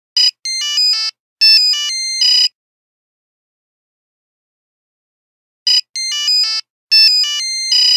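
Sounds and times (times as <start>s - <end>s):
phone app buzzer: 0.2s - 2.6s, 5.7s - 7.9s.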